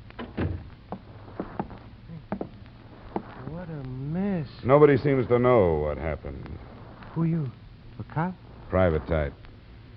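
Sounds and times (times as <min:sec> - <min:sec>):
low hum: 0:00.0 - 0:09.9
wooden door pushed shut with dull thuds: 0:00.2 - 0:00.7
speech: 0:04.6 - 0:09.4.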